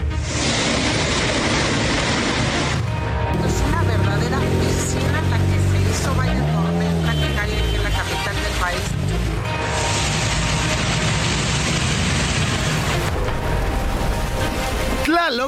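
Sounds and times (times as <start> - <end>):
heavy rain pouring during a strong storm over the Valley of Mexico: 0.1 - 6.5, 7.9 - 15.4
rushing flood water: 0.2 - 6.0, 7.7 - 15.4.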